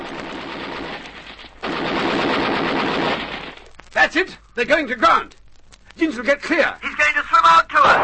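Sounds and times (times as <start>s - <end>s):
machine-gun fire: 0.0s - 3.8s, 7.8s - 8.0s
speech: 4.1s - 5.4s, 6.0s - 8.0s.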